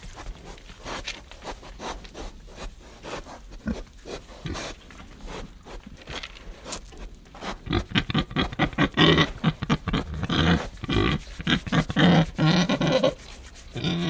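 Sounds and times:
pigs chewing and rustling while eating: 0:00.0 - 0:08.7, 0:09.3 - 0:14.0
Tamworth pigs grunting while eating: 0:03.0 - 0:05.8, 0:07.3 - 0:14.0.

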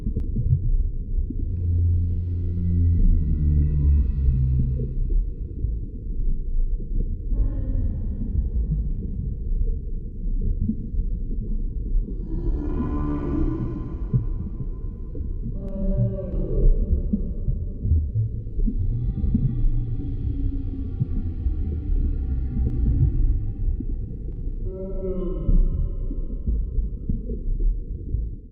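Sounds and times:
heavy continuous low rumble: 0:00.0 - 0:28.4
large whale moans: 0:01.4 - 0:05.7, 0:07.2 - 0:09.0, 0:12.0 - 0:27.4.

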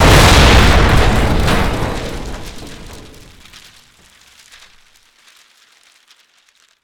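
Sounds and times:
bank safe explosion: 0:00.0 - 0:03.5.

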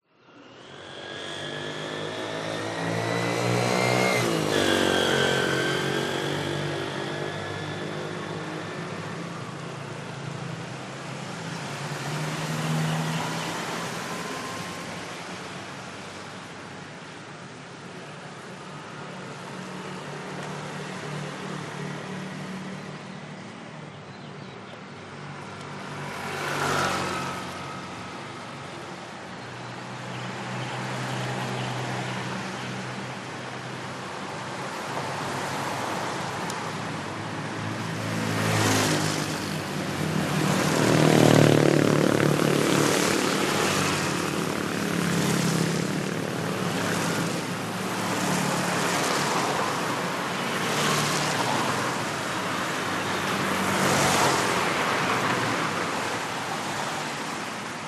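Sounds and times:
motorcycles on wet road in Chiang Mai Thailand: 0:00.8 - 0:22.9, 0:25.4 - 0:57.8
cars on wet road in Chiang Mai Thailand: 0:01.7 - 0:17.2, 0:25.4 - 0:29.3, 0:30.3 - 0:57.8.

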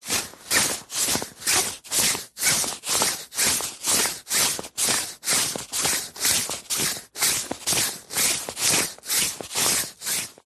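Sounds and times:
thick high-vis jacket rustling with walking movement: 0:00.0 - 0:10.4.

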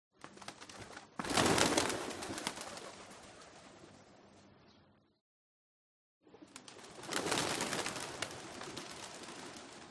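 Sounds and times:
flock of pigeons taking off with flapping wings: 0:00.1 - 0:03.8, 0:06.4 - 0:09.9.

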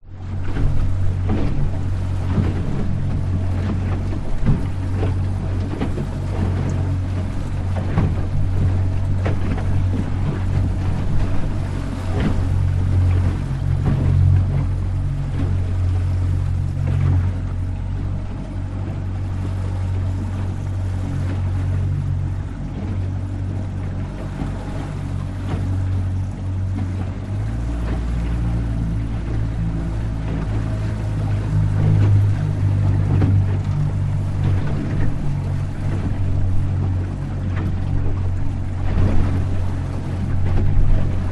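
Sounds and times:
choppy sea waves against motorboat hull: 0:00.0 - 0:41.3
motorboat driving slowly on choppy sea, recorded close to floor hull: 0:00.0 - 0:41.3.

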